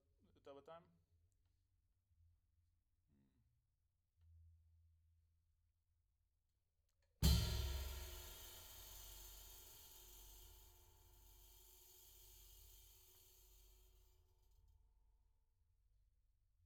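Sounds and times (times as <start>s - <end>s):
floor tom drum: 7.2s - 11.2s.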